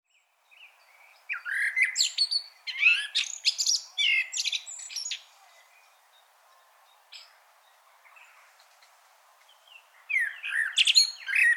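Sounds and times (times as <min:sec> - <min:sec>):
common blackbird singing: 0:00.1 - 0:11.5.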